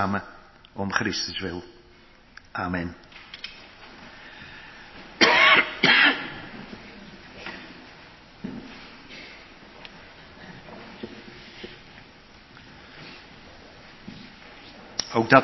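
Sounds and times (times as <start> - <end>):
speech: 0.0 - 1.8, 2.6 - 3.2, 15.2 - 15.4
dry coughs from a preacher during a church service: 5.2 - 6.4.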